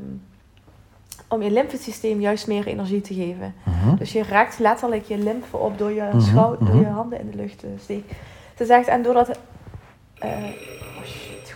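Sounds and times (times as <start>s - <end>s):
low hum: 0.0s - 11.5s
speech: 1.3s - 9.5s, 10.2s - 11.2s
doorbell ringing in a home: 10.2s - 11.5s.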